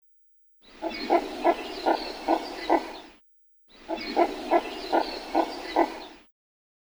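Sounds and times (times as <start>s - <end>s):
Red-crested pochard Netta rufina giving rasping reedy calls: 0.8s - 3.0s, 3.8s - 6.1s.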